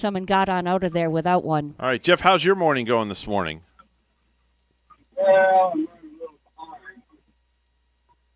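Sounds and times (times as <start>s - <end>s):
speech: 0.0s - 3.7s, 5.2s - 6.0s
caller's voice on a bad phone line, garbled and distorted: 5.2s - 7.1s.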